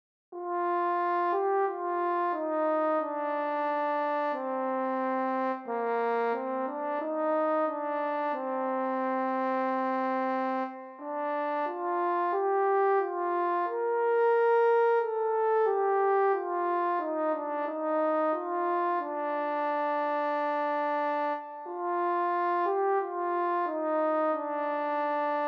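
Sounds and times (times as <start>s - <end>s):
solo horn melody: 0.4s - 25.4s.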